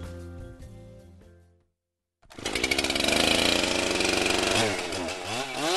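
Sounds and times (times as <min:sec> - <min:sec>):
chainsaw idling and revving at full throttle: 0:02.2 - 0:05.7.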